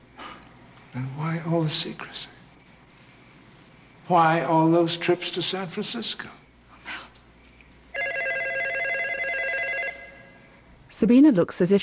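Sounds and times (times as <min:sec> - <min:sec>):
speech: 0:00.9 - 0:02.4, 0:04.1 - 0:06.4, 0:11.0 - 0:11.8
telephone ringing with a warbling electronic trill: 0:07.9 - 0:10.6.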